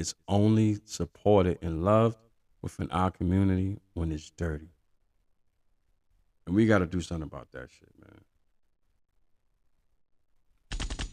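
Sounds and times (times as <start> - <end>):
speech: 0.0 - 4.8, 6.5 - 8.2
rapid gunfire: 10.7 - 11.1.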